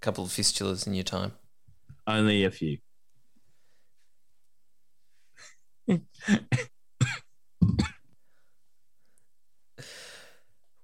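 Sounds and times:
speech: 0.0s - 1.4s, 2.1s - 2.8s, 5.4s - 6.7s
harsh raspy coughing: 5.4s - 8.1s.

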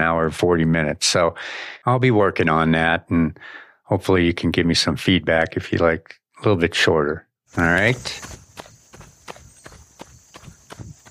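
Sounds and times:
speech: 0.0s - 8.4s
running footsteps: 7.5s - 11.0s.

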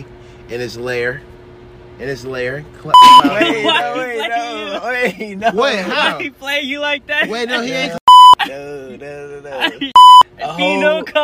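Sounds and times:
speech: 0.5s - 1.4s, 2.0s - 9.9s, 10.5s - 11.2s
steady 1 kHz censor bleep: 3.0s - 3.2s, 8.1s - 8.4s, 10.0s - 10.2s
laughter: 3.0s - 6.3s, 9.4s - 10.0s.

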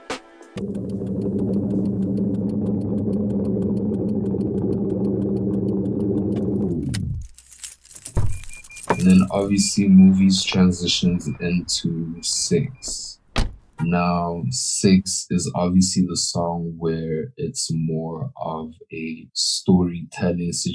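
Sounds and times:
car engine starting and idling: 0.6s - 7.4s, 8.4s - 13.9s
keys clicking and rattling: 6.9s - 9.8s
speech: 9.4s - 13.2s, 13.8s - 20.7s.

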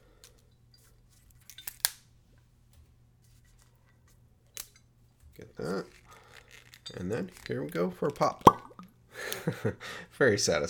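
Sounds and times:
plastic zip strip pulled off the seal of a spirits bottle: 1.2s - 2.0s, 5.6s - 7.8s
speech: 5.4s - 6.0s, 6.9s - 8.6s, 9.5s - 10.6s.

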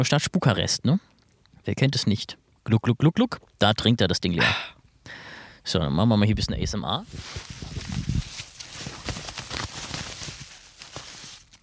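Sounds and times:
speech: 0.0s - 8.2s
dry leaves rustling and crunching: 7.0s - 11.6s.

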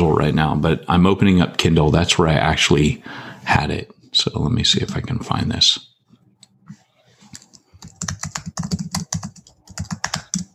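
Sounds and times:
speech: 0.2s - 5.9s
man typing on a computer keyboard: 7.3s - 10.5s.

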